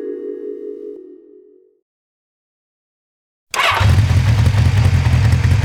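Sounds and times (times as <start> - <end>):
motorcycle engine revving at full throttle and shifting gears: 3.5 - 5.6.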